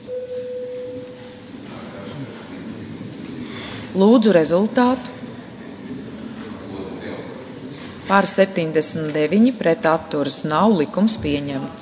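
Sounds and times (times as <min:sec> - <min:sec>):
steady electronic parliamentary bell tone rung before a vote on a bill: 0:00.0 - 0:01.4
low murmur with faint voices: 0:00.8 - 0:11.7
speech: 0:03.9 - 0:05.2, 0:08.1 - 0:11.7.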